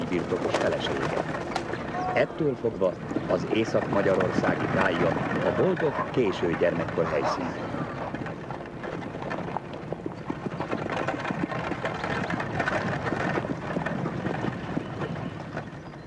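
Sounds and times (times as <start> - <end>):
constant rumbling wind-like noise: 0.0 - 16.0
mare hooves clip-clopping at a steady pace: 0.0 - 16.0
speech: 0.1 - 1.4, 2.1 - 7.8.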